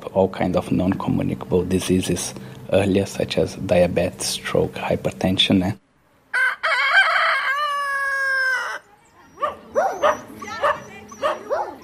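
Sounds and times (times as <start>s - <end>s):
speech: 0.2s - 5.8s
rooster crowing on the streets of Vulindlela near Pietermaritzburg: 6.3s - 8.9s
stray dogs barking on the streets of Vulindlela near Pietermaritzburg: 9.3s - 11.8s.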